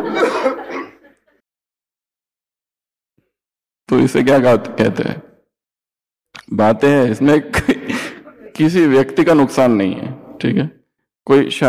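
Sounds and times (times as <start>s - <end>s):
person coughing: 0.0s - 1.0s
laughter: 0.0s - 1.4s, 7.5s - 8.6s
speech: 3.9s - 5.3s, 6.5s - 7.9s, 8.6s - 11.6s.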